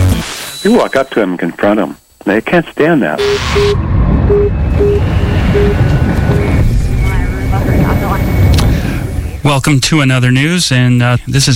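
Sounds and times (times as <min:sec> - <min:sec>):
speech: 0:00.6 - 0:05.9, 0:09.4 - 0:11.5
helicopter hovering overhead with rotor roar: 0:04.3 - 0:09.5.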